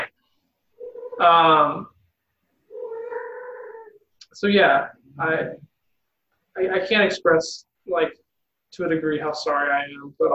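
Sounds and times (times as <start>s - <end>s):
cat yowling and meowing: 0.8s - 1.2s, 2.7s - 4.0s
speech: 1.2s - 1.9s, 4.3s - 5.7s, 6.6s - 10.3s.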